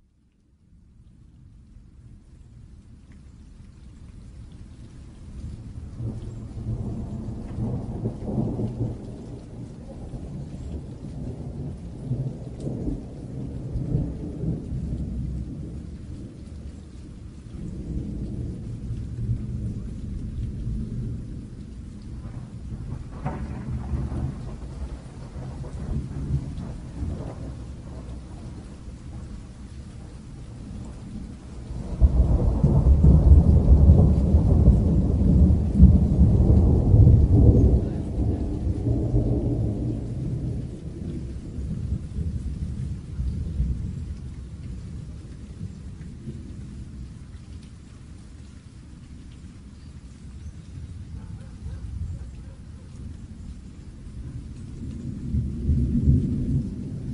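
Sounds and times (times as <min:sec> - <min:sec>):
rain: 0:00.0 - 0:57.1
thunder: 0:06.0 - 0:16.3, 0:17.6 - 0:46.6, 0:54.1 - 0:57.1.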